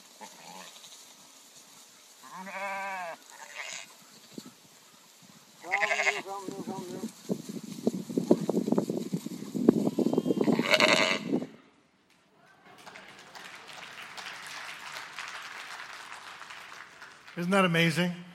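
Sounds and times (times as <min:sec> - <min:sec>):
flock of sheep bleating: 0:02.2 - 0:03.9, 0:05.6 - 0:06.6, 0:10.4 - 0:11.4
wind noise rushing across the microphone: 0:04.2 - 0:11.7
speech: 0:17.4 - 0:18.2.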